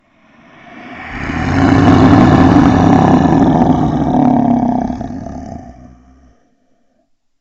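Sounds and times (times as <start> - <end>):
monster snoring: 1.1 - 6.4.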